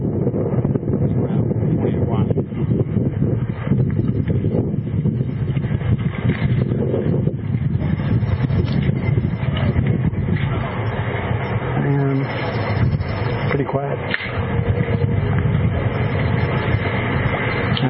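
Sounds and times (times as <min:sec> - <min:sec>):
wind buffeting the microphone outdoors: 0:00.0 - 0:17.8.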